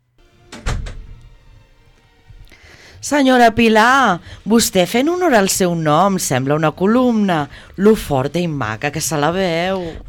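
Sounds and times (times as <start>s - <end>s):
office door opening: 0.4s - 1.4s
speech: 3.0s - 10.0s.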